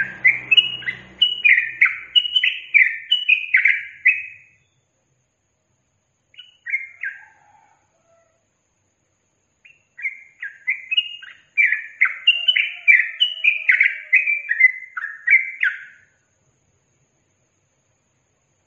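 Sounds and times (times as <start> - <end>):
yellow-vented bulbul tutor song for training captive birds: 0.0 - 4.9, 6.3 - 7.3, 9.5 - 16.2.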